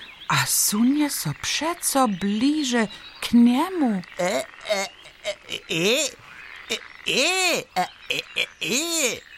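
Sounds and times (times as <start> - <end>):
speech: 0.3 - 9.3
person imitating frog croaks: 3.9 - 9.3.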